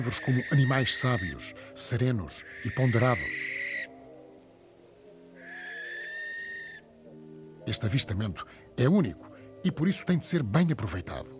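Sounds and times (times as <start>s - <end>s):
speech: 0.0s - 3.6s, 7.7s - 11.3s
barn owl screeching: 0.0s - 4.0s, 5.4s - 6.9s.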